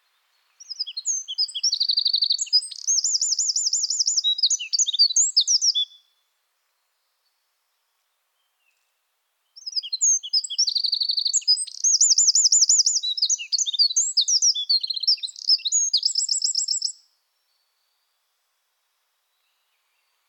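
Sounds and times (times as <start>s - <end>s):
Eurasian wren Troglodytes troglodytes singing: 0.6s - 5.9s, 9.6s - 17.0s.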